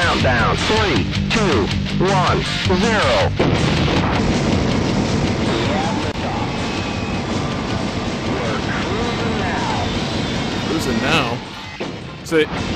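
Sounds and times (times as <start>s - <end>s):
speech: 0.1s - 4.2s, 10.9s - 11.5s, 12.3s - 12.7s
space shuttle rocket launch roar: 3.4s - 12.7s.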